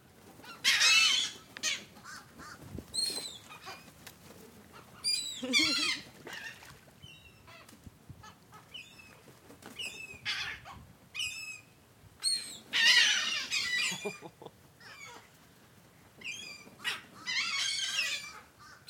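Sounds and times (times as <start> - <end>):
seagulls squawking while catching thrown bagel pieces: 0.4 - 3.9, 4.7 - 6.7, 12.2 - 15.3, 16.2 - 18.8.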